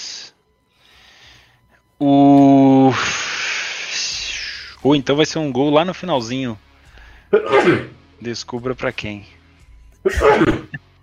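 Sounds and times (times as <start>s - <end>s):
speech: 2.0s - 2.3s, 4.8s - 6.7s, 7.3s - 9.4s, 10.0s - 10.8s
single loud sneeze close to the microphone: 7.4s - 8.0s, 10.1s - 10.8s.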